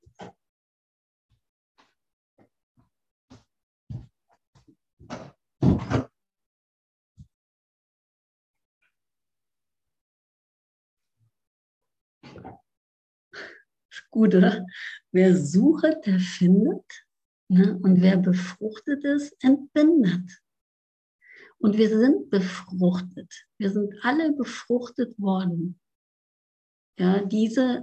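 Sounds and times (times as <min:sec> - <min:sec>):
loud thud of a door being closed: 0:05.1 - 0:06.1
speech: 0:14.1 - 0:20.4, 0:21.6 - 0:25.8, 0:27.0 - 0:27.8.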